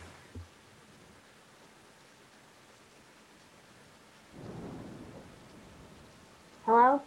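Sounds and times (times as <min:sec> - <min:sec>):
steady rain: 0:00.0 - 0:07.0
deep rumble of thunder: 0:04.3 - 0:07.0
speech: 0:06.7 - 0:07.0.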